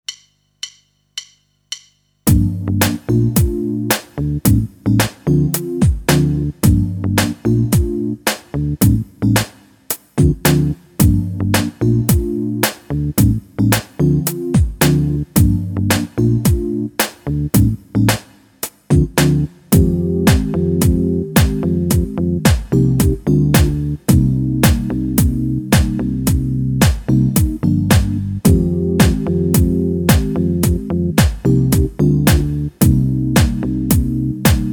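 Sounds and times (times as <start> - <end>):
rhythm backing: 0.0 - 34.7.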